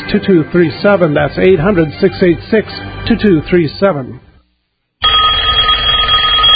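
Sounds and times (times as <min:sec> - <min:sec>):
speech: 0:00.1 - 0:04.2
telephone bell ringing: 0:05.0 - 0:06.5.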